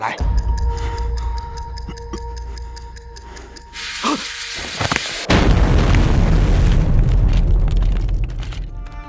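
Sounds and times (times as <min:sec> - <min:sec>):
ticking: 0:00.2 - 0:03.8
hand grenade explosion rolling into a roaring rumble: 0:05.3 - 0:08.5.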